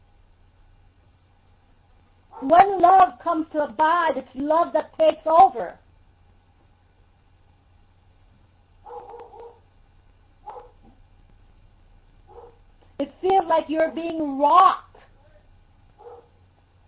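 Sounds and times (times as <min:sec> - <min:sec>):
steady low hum: 0:00.0 - 0:16.8
dog barks: 0:02.3 - 0:02.7, 0:08.8 - 0:09.7, 0:10.4 - 0:11.0, 0:12.2 - 0:12.7, 0:16.0 - 0:16.4
speech: 0:02.4 - 0:05.8, 0:13.0 - 0:14.8.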